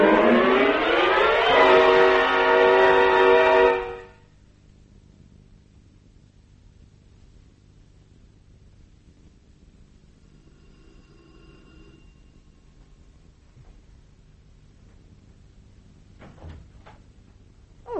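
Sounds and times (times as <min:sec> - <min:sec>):
steady hum: 0:00.0 - 0:17.9
door creaking and closing: 0:16.2 - 0:17.0.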